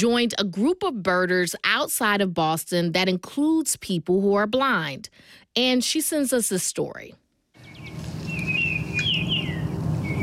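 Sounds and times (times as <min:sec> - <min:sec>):
speech: 0:00.0 - 0:07.2
Baltimore Oriole song in spring outside Boston: 0:07.6 - 0:10.2
steady low background rumble: 0:07.6 - 0:10.2.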